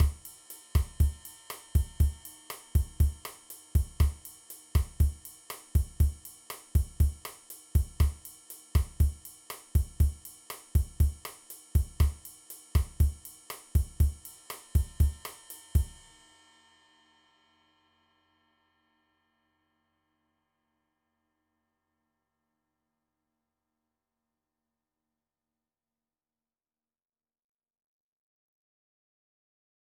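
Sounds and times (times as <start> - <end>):
bossa nova drum beat: 0.0 - 16.0.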